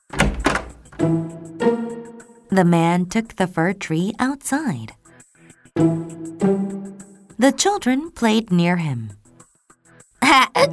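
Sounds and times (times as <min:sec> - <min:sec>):
door latch and handle thunks: 0:00.0 - 0:01.0
speech: 0:01.0 - 0:01.9, 0:02.5 - 0:05.0, 0:07.4 - 0:09.2, 0:10.3 - 0:10.7.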